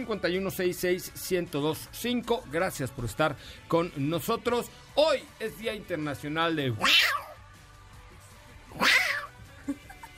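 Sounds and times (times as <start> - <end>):
speech: 0.0 - 7.2
person imitating cat meows: 6.7 - 7.4, 8.7 - 9.4.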